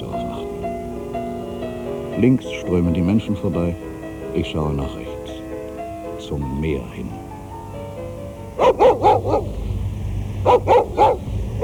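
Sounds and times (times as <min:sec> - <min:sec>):
steady low rumbling background: 0:00.0 - 0:11.6
speech: 0:02.2 - 0:05.0, 0:06.3 - 0:07.2
stray dog barking: 0:08.6 - 0:09.6, 0:10.4 - 0:11.6.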